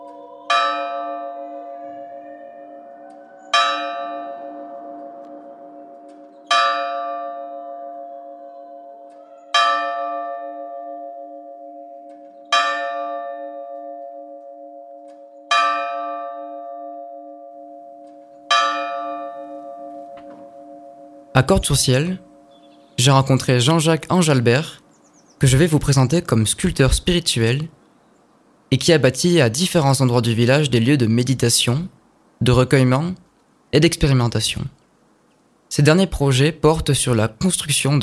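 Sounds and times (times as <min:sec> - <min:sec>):
church bell ringing and resonating: 0:00.0 - 0:24.8
speech: 0:21.4 - 0:22.3, 0:23.0 - 0:24.8, 0:25.4 - 0:27.8, 0:28.7 - 0:34.8, 0:35.7 - 0:38.0.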